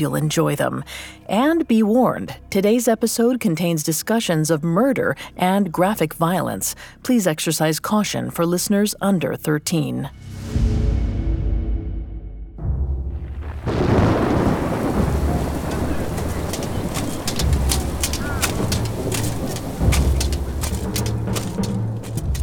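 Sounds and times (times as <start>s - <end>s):
speech: 0.0s - 10.9s
deep rolling thunder: 12.6s - 21.4s
steady heavy rain: 13.2s - 22.4s
sharp drips and crackles: 13.4s - 22.4s.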